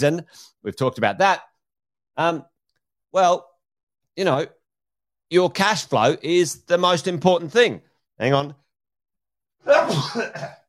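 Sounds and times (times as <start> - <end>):
speech: 0.0 - 1.5, 2.2 - 2.5, 3.1 - 3.5, 4.2 - 4.6, 5.3 - 8.6, 9.6 - 10.6
person sneezing, partly held back: 9.6 - 10.6.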